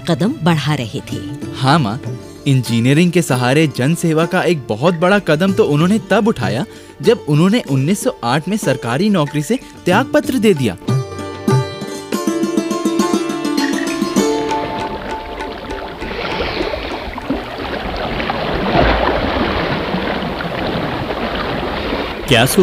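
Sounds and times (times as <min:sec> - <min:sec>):
speech: 0:00.0 - 0:10.9, 0:22.3 - 0:22.6
tonal music: 0:00.0 - 0:18.2
river waves surging against the bank: 0:14.2 - 0:22.6.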